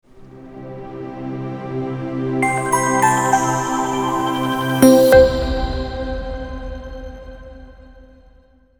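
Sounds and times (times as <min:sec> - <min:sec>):
corporate logo jingle: 0:02.4 - 0:06.6.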